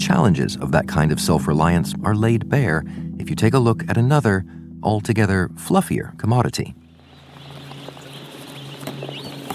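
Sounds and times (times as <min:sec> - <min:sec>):
speech: 0:00.1 - 0:06.8
white feather meat chickens clucking at an industrial farm north of Shanghai: 0:07.0 - 0:09.5.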